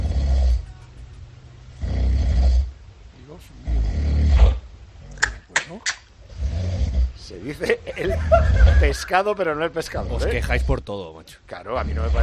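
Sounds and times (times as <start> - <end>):
loud heavy rasping snoring: 0.0 - 0.7, 1.8 - 2.7, 3.6 - 4.6, 6.2 - 7.3, 8.1 - 9.0, 9.9 - 10.9, 11.8 - 12.2
speech: 7.5 - 7.8, 8.8 - 12.2
laughter: 7.6 - 9.4.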